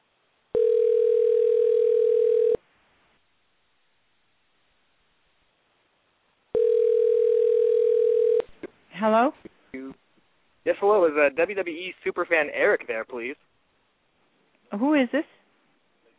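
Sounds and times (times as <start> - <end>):
ringback tone of an outgoing telephone call: 0.6 - 2.6, 6.6 - 8.4
speech: 9.0 - 9.4, 10.8 - 13.5, 14.7 - 15.4.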